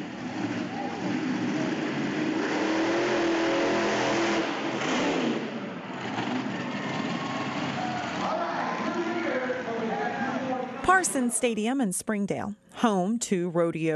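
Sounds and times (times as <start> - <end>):
monster truck engines revving at a racing event in a rodeo stadium: 0.0 - 10.9
speech: 11.0 - 13.9.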